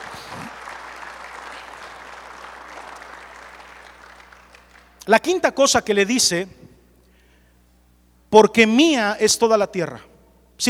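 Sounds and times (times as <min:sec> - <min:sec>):
audience applauding the Lord at a preacher's call: 0:00.0 - 0:05.1
faint low hum: 0:00.0 - 0:10.6
speech: 0:05.0 - 0:06.6, 0:08.3 - 0:10.6.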